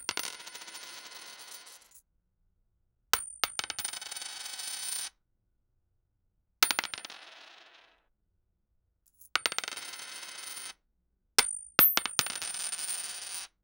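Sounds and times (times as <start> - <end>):
coins dropping in an arcade: 0.1 - 2.0, 6.7 - 7.9, 9.4 - 10.7, 11.8 - 13.5.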